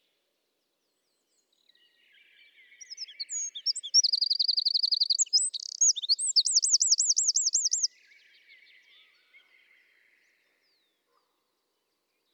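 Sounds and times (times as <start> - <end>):
Eurasian wren Troglodytes troglodytes song: 1.5 - 8.9.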